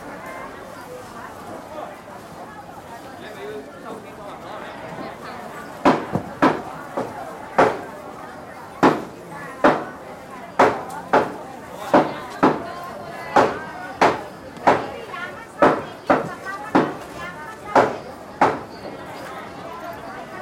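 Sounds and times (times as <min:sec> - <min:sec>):
murmur of voices on a busy street beside a wet market: 0:00.0 - 0:20.4
loud sharp knocks: 0:05.8 - 0:07.8, 0:08.8 - 0:09.9, 0:10.6 - 0:12.7, 0:13.3 - 0:14.9, 0:15.6 - 0:17.0, 0:17.7 - 0:18.7.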